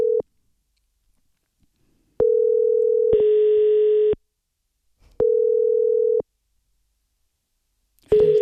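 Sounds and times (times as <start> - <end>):
telephone ringback tone while placing call: 2.2 - 4.2, 5.2 - 6.2, 8.1 - 8.4.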